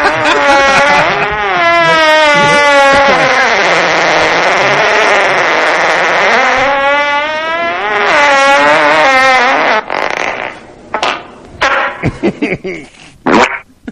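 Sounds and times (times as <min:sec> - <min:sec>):
laughter: 0:00.0 - 0:03.7, 0:12.0 - 0:13.0
loud buzzing fart in a car: 0:00.0 - 0:12.1, 0:13.2 - 0:13.7.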